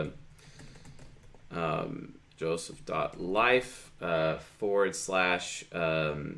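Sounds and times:
typing a website address on a computer keyboard: 0:00.5 - 0:01.4
person talking: 0:01.5 - 0:06.3.

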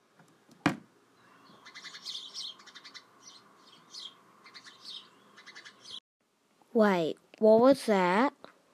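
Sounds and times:
bird calling with high chirping notes: 0:01.1 - 0:06.0
speech: 0:06.8 - 0:08.4.

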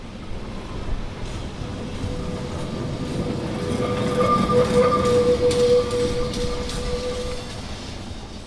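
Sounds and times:
Lisbon tram grinding along the rails: 0:00.0 - 0:08.4
thin piercing metallic squeal of Lisbon tram on rails: 0:03.6 - 0:07.9.

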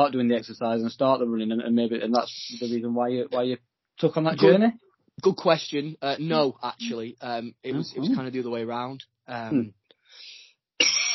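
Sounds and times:
speech: 0:00.0 - 0:09.8
soft breath in: 0:10.0 - 0:10.6.

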